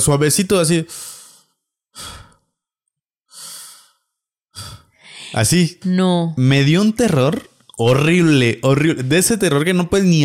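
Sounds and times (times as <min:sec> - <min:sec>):
speech: 0:00.0 - 0:01.2, 0:05.3 - 0:10.2
voice imitating soft airy breathing: 0:00.8 - 0:02.4, 0:03.3 - 0:04.0, 0:04.6 - 0:05.5.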